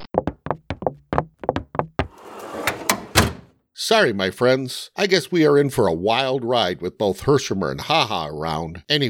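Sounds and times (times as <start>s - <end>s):
sharp wooden knocks of a desk drawer: 0.2s - 2.2s
desk drawer sliding shut: 2.1s - 3.5s
speech: 3.9s - 9.0s.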